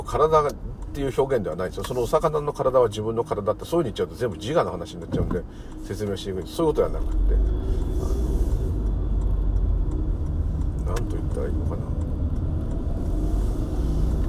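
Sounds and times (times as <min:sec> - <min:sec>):
low engine drone inside a moving car: 0:00.0 - 0:14.2
road rumble inside a moving car: 0:00.0 - 0:14.2
speech: 0:00.1 - 0:08.1, 0:10.9 - 0:12.0.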